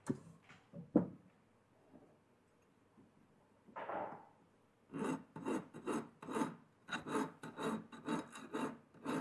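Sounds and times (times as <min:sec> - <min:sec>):
large file smoothing and shaping welded metal edges: 0:04.9 - 0:09.1.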